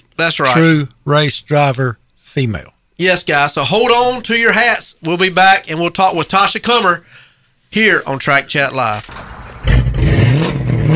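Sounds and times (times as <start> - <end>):
speech: 0.2 - 9.3
car engine revving through a loud throaty custom exhaust: 9.4 - 10.9.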